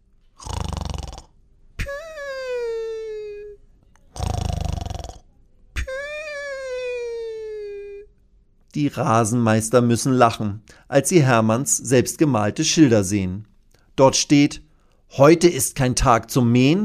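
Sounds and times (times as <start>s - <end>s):
sleeping cartoon dinosaur snoring: 0.4s - 2.0s, 4.1s - 5.3s
speech: 8.8s - 16.8s.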